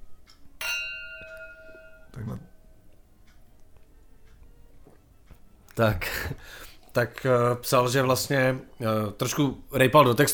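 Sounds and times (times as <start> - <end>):
glasses clinking in a toast: 0.6 - 2.8
speech: 5.8 - 10.3.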